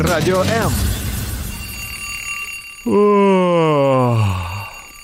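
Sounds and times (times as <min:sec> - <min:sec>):
alarm clock ringing: 0:00.1 - 0:05.0
speech: 0:00.2 - 0:00.9, 0:02.8 - 0:04.4
person groaning: 0:02.9 - 0:04.9.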